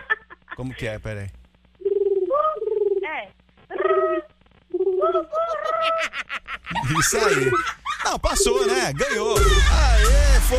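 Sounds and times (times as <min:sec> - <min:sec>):
speech: 0:00.6 - 0:01.4, 0:05.1 - 0:10.5
woman imitating a pigeon's cooing as a contest challenge: 0:01.8 - 0:06.0
laughter: 0:05.3 - 0:10.5.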